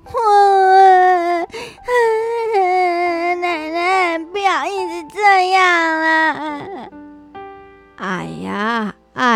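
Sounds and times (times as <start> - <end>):
person crying with long high wails and a gasping sob: 0.2 - 7.0.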